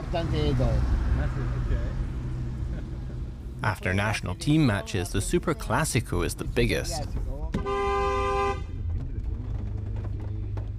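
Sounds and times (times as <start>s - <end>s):
road noise of taxi moving through city centre traffic: 0.0s - 10.7s
taxi engine rumble in city centre traffic: 0.0s - 10.7s
speech: 0.1s - 2.1s, 3.6s - 7.8s
taxi horn blaring: 7.6s - 8.7s.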